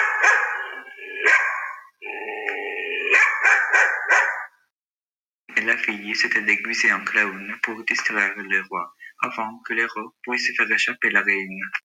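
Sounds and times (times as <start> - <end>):
dog barking and howling: 0.0 - 1.9, 3.1 - 4.6
speech: 5.7 - 11.8.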